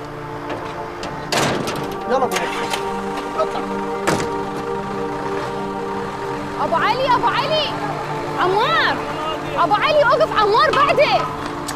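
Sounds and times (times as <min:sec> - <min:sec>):
low engine-like hum: 0:00.0 - 0:11.7
door shutting: 0:00.4 - 0:03.2, 0:04.0 - 0:04.4
speech: 0:02.1 - 0:04.4, 0:06.6 - 0:11.5.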